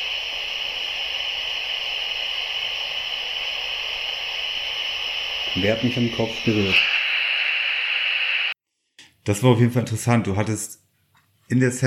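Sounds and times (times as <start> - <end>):
steady broadband static hiss: 0.0 - 8.6
speech: 5.6 - 7.0, 9.3 - 10.8, 11.5 - 11.8.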